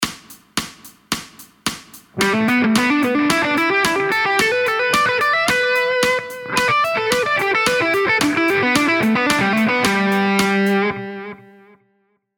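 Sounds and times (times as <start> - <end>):
major pentatonic scale exercise in sixteenth notes: 2.2 - 11.6.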